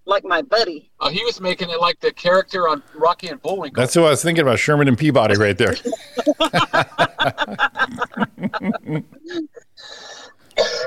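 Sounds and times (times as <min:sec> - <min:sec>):
speech: 0:00.3 - 0:10.4
laughter: 0:05.6 - 0:09.5
person sputtering with strained voiced bursts: 0:07.6 - 0:09.6
person coughing harshly: 0:10.6 - 0:10.8.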